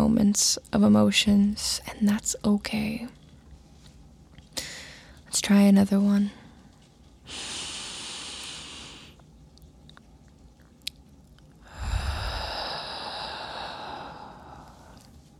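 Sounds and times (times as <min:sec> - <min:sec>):
speech: 0:00.3 - 0:03.2, 0:05.3 - 0:06.4, 0:07.3 - 0:07.6
slow deep breaths during a meditation for panic or anxiety: 0:04.6 - 0:05.2, 0:07.2 - 0:09.2, 0:11.6 - 0:15.2.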